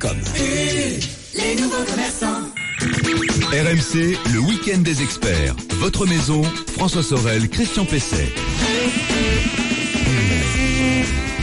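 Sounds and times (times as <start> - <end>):
speech: 0.0 - 2.3, 3.5 - 9.6
human voice imitating a buzzing mosquito: 7.7 - 11.4.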